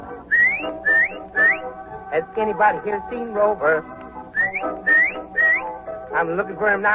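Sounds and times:
person whistling rising notes to call a lost hunting dog: 0.3 - 1.7, 4.3 - 5.8
speech: 2.2 - 4.0, 6.1 - 6.9.

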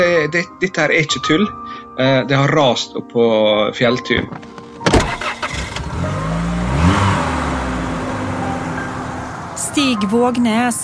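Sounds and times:
speech: 0.0 - 4.6, 9.8 - 10.8
car engine cranking and catching: 4.9 - 10.8.

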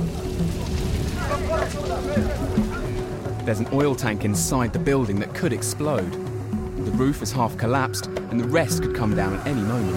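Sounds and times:
building fire roaring and crackling: 0.0 - 7.3
speech: 3.5 - 6.3, 6.9 - 9.9.

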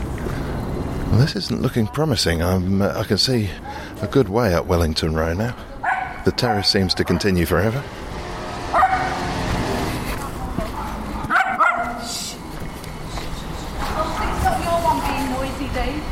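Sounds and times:
steady outdoor street noise: 0.0 - 16.1
speech: 1.1 - 8.0
dog barking: 5.8 - 7.3, 8.6 - 9.5, 10.8 - 12.2
car passing: 5.9 - 16.1.

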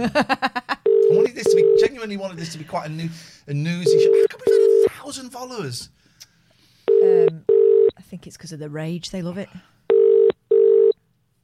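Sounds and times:
speech: 0.0 - 0.4, 1.5 - 4.5, 5.1 - 6.0, 8.1 - 9.8
phone line ringing as a call goes through: 0.9 - 2.0, 3.8 - 4.9, 6.9 - 7.9, 9.9 - 11.0.

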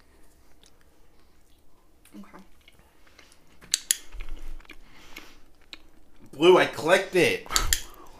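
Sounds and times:
small pet munching on a piece of cheese: 0.3 - 6.3
speech: 6.4 - 7.6.

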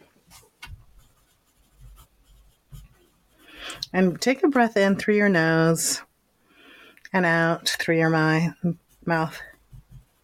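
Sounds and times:
pen scratching on paper while writing: 0.7 - 4.4, 7.6 - 10.2
speech: 3.9 - 6.1, 7.1 - 9.5.

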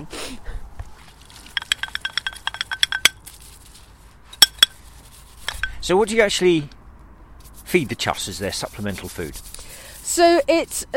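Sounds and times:
speech: 0.0 - 0.4, 5.9 - 6.8, 7.7 - 10.9
dishes and cutlery clinking while washing up in a bucket in a field: 1.5 - 3.2.

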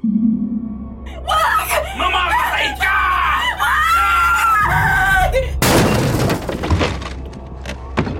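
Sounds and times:
woman screaming: 1.2 - 5.6
crash and clatter: 5.6 - 8.1.

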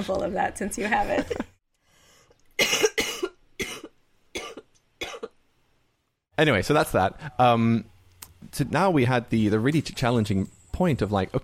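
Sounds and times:
speech: 0.0 - 1.5, 6.4 - 11.4
person coughing harshly: 2.6 - 5.3.

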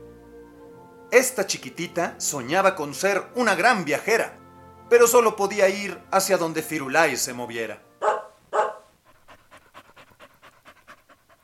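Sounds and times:
speech: 1.1 - 7.9
dog panting: 8.0 - 11.4.

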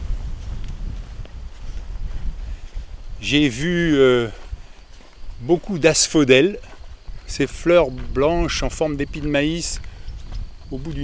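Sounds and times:
wind blowing outdoors: 0.0 - 11.0
speech: 3.2 - 4.4, 5.4 - 6.7, 7.3 - 9.9, 10.7 - 11.0.

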